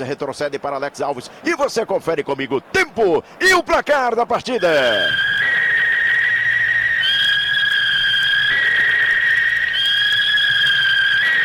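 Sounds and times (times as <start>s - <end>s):
speech: 0.0s - 5.3s
referee whistle starting second half: 4.5s - 11.4s.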